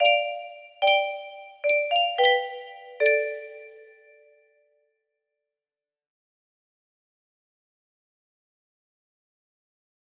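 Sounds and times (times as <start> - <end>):
music box melody: 0.0 - 4.2.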